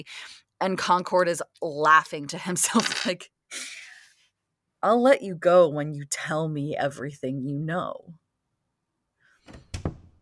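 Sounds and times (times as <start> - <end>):
speech: 0.0 - 3.8, 4.8 - 8.2
soft scrape of a swinging door: 9.4 - 10.2
door easing shut with a heavy low double thud: 9.5 - 10.2.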